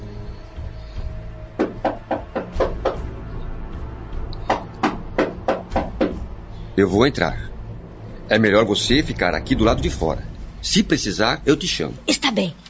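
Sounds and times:
firm rhythmic knocking on the door of a marquis's chambers: 1.6 - 3.0, 4.5 - 6.3
speech: 6.8 - 7.5, 8.3 - 12.6.

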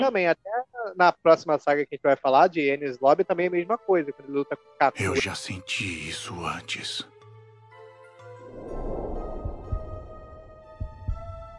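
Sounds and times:
speech: 0.0 - 7.1
deep heartbeat thumps: 8.6 - 11.5.

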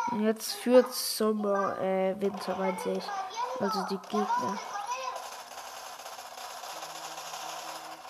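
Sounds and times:
speech: 0.1 - 4.7
video game gunfire: 3.7 - 8.0.

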